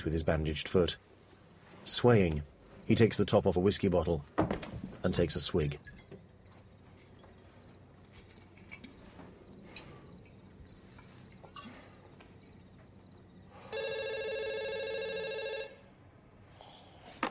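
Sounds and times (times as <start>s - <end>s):
speech: 0.0s - 1.1s, 1.8s - 5.9s
faint ticks and rustles: 5.7s - 13.2s
electronic telephone ringing beside a bed: 13.6s - 15.9s.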